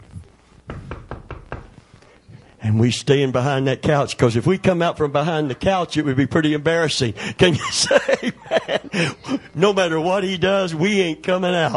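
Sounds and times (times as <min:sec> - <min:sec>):
firm knocking on a door: 0:00.7 - 0:01.8
speech: 0:02.6 - 0:11.7
laughter: 0:07.4 - 0:09.4.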